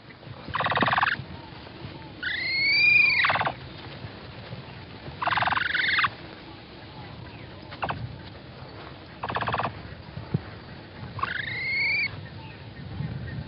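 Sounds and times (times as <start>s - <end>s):
capybara calls: 0.5s - 1.2s, 2.2s - 3.6s, 5.2s - 6.1s, 7.8s - 8.0s, 9.2s - 9.8s, 11.2s - 12.1s.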